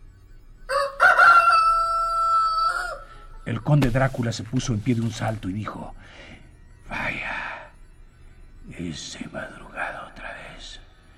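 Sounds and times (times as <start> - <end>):
rooster crowing at dawn: 0.7 - 3.3
speech: 3.5 - 6.4, 8.7 - 9.6.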